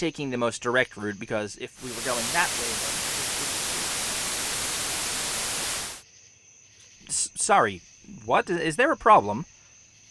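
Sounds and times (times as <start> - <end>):
speech: 0.0 - 3.0, 7.5 - 9.6
loud hissing radio static interference: 1.8 - 6.0.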